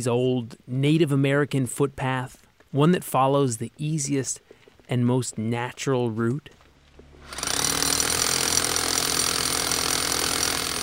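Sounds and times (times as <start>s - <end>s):
speech: 0.0s - 6.6s
trail crew rock drilling holes into a big boulder in the woods: 7.0s - 10.8s.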